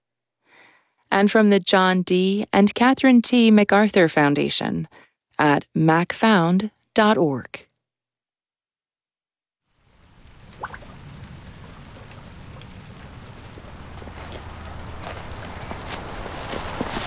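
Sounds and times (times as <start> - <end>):
speech: 1.1 - 7.7
steady rain at a ranch: 9.7 - 17.0
hoof-like clops and sharp knocks from livestock: 10.2 - 17.0.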